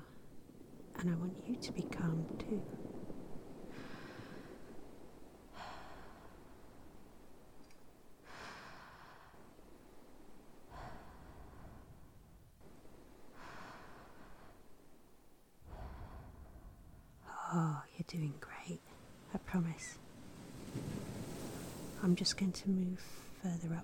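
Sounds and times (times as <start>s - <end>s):
speech: 1.0s - 2.9s, 22.1s - 23.8s
slow calm breathing close to the microphone: 2.7s - 17.9s, 19.9s - 22.1s.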